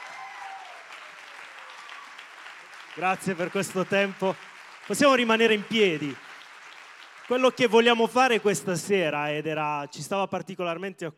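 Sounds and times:
applause from a church congregation at a Sunday gathering: 0.0s - 9.3s
speech: 3.0s - 6.2s, 7.3s - 11.1s.

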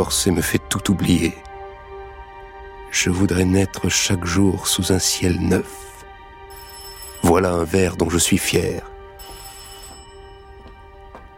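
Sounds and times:
speech: 0.0s - 1.5s, 2.9s - 5.9s, 7.2s - 9.0s
telephone ringing early in the morning: 6.5s - 7.4s, 9.2s - 10.6s.

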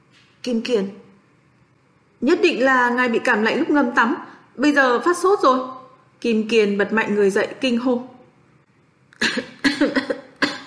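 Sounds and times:
speech: 0.4s - 1.0s, 2.2s - 8.1s
dry coughing fit from a person with a cold and fever: 9.2s - 10.6s.

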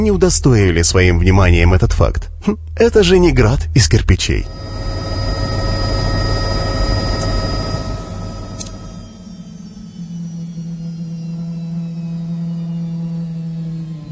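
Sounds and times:
speech: 0.0s - 4.8s
helicopter landing on a lawn in front of a house: 4.4s - 9.7s.

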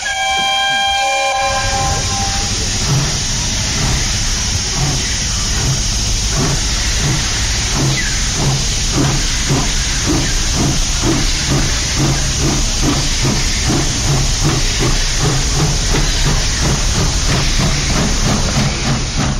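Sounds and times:
steam locomotive whistle: 0.0s - 3.1s
rumbling rail noise: 0.0s - 19.3s
steam locomotive chuffing: 0.0s - 19.3s
steam locomotive hissing steam: 0.0s - 19.3s.

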